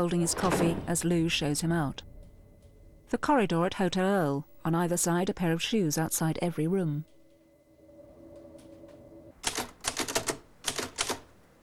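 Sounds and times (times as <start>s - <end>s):
speech: 0.0s - 2.1s, 3.1s - 7.2s
faint steady hum: 0.0s - 11.6s
typewriter keys clacking at a desk in a hotel room: 9.4s - 11.3s.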